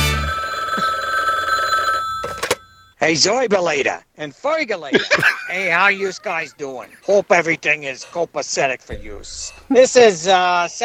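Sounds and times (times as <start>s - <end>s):
telephone ringing with an electronic trill: 0.0s - 3.0s
speech: 3.0s - 10.8s
laughter: 4.9s - 7.4s.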